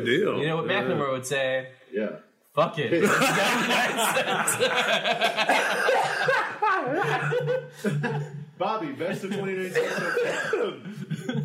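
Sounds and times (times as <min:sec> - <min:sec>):
speech: 0:00.0 - 0:11.4
laughter: 0:03.0 - 0:11.4
person coughing: 0:05.5 - 0:07.5, 0:09.7 - 0:11.4.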